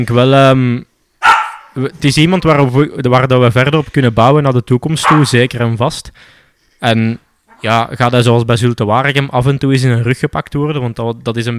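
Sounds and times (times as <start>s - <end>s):
speech: 0.0s - 0.9s, 1.8s - 11.5s
dog barking: 1.2s - 1.8s, 5.0s - 5.4s.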